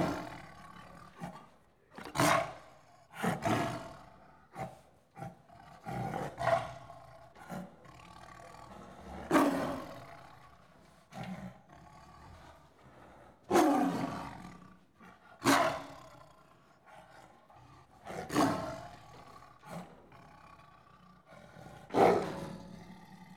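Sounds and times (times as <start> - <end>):
tiger growling and snarling in countryside of India, Pakistan and Nepal: 0.0 - 23.3.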